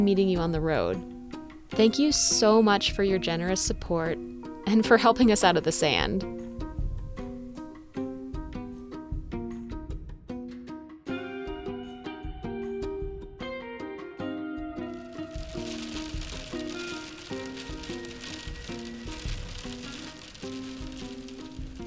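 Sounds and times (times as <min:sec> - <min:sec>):
speech: 0:00.0 - 0:01.1, 0:01.7 - 0:06.4
gentle melodic instrumental music: 0:00.0 - 0:21.8
hail rattling on a van roof: 0:15.3 - 0:21.8.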